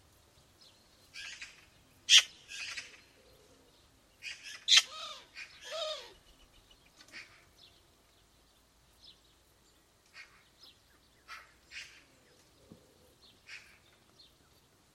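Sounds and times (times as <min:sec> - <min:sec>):
Eurasian magpie harsh rasping squawks: 0:01.2 - 0:03.0, 0:04.2 - 0:06.1, 0:11.3 - 0:12.0, 0:13.5 - 0:13.8.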